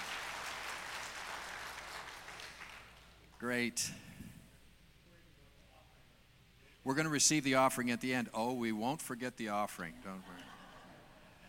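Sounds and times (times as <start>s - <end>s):
audience applause: 0.0s - 3.2s
speech: 3.4s - 4.1s, 6.8s - 10.5s
laughter: 10.1s - 11.4s.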